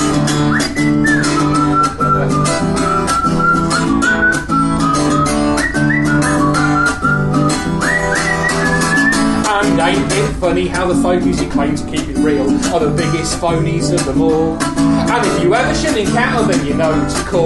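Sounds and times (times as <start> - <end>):
person whistling a wavering sustained melody: 0.2 - 9.5
speech: 10.4 - 17.4.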